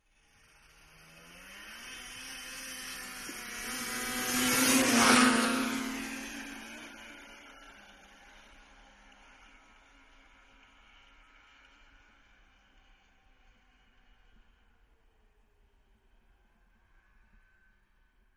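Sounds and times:
snowmobile engine running steady: 0:00.2 - 0:14.5.

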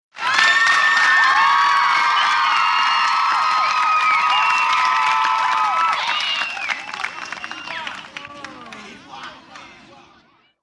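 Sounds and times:
young kids cheering: 0:00.2 - 0:07.9.

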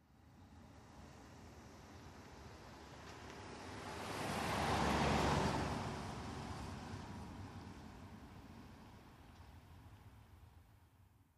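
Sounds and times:
car passing by at medium speed: 0:00.7 - 0:09.0.

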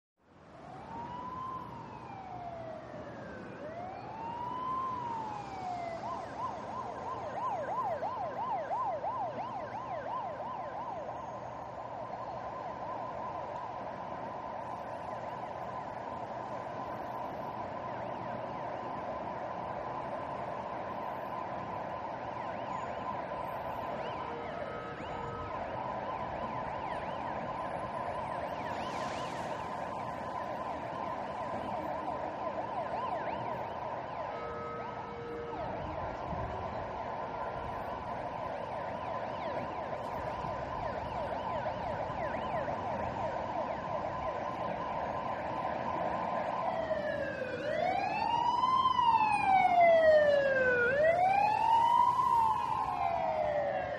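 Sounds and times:
heavy traffic: 0:00.2 - 0:53.9
diffuse echoed siren changing from whooper to wailer: 0:00.5 - 0:53.9.

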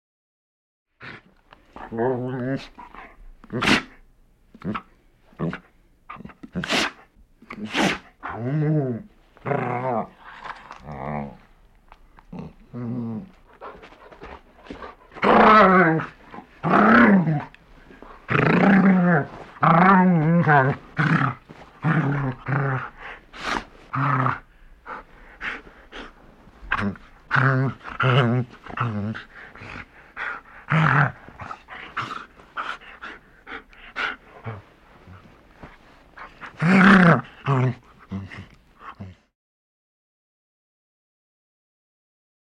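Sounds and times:
dog sneezing: 0:03.5 - 0:04.0, 0:06.5 - 0:08.2
large dog growling: 0:08.2 - 0:11.5, 0:12.2 - 0:35.3, 0:36.2 - 0:39.3.

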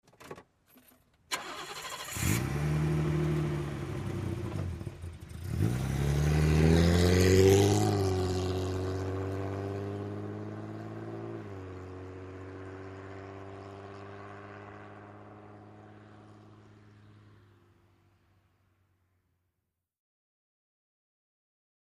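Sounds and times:
BMW 530i at medium distance: 0:00.0 - 0:19.5.

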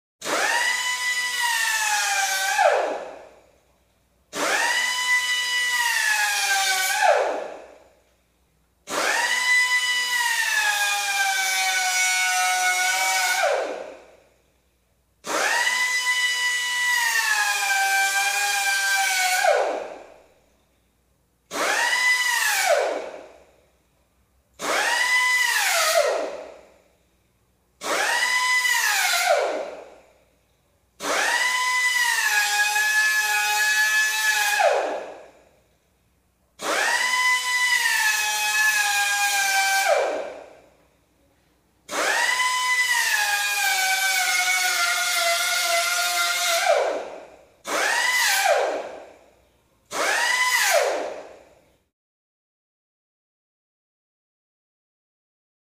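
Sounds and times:
air drill spurts in an interior shop or garage: 0:00.2 - 0:03.4, 0:04.3 - 0:07.9, 0:08.9 - 0:14.2, 0:15.2 - 0:20.4, 0:21.5 - 0:23.6, 0:24.6 - 0:27.2, 0:27.8 - 0:35.6, 0:36.6 - 0:40.8, 0:41.9 - 0:49.3, 0:49.9 - 0:51.5.

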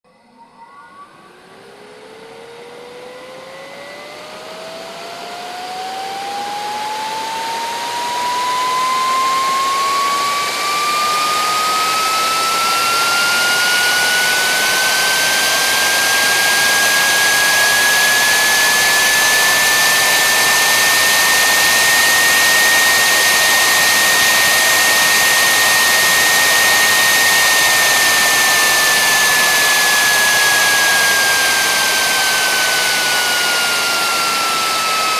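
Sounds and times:
electric turbine powering on and off: 0:01.1 - 0:35.1.

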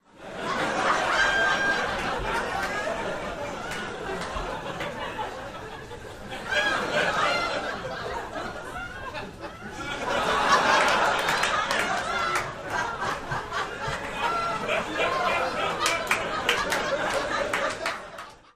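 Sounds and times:
medium crowd laughing: 0:00.0 - 0:18.5
medium crowd applause: 0:10.5 - 0:18.5.

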